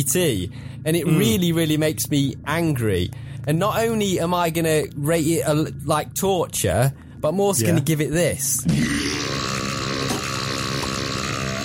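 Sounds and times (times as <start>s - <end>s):
speech: 0.0s - 9.4s
long loud burp: 8.6s - 11.6s.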